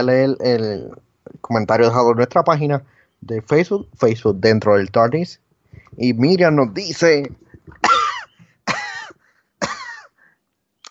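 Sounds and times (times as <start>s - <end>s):
speech: 0.0s - 8.0s
rough raspy throat-clearing coughs: 7.7s - 10.2s.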